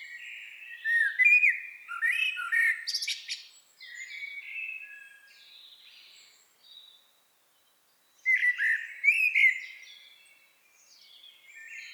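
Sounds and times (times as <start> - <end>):
common blackbird Turdus merula singing a whistled warble: 0.0 - 5.2, 8.3 - 10.3.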